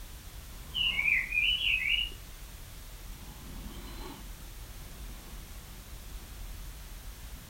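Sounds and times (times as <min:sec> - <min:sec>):
quiet background hiss: 0:00.0 - 0:07.4
bird twittering chirps: 0:00.7 - 0:02.2.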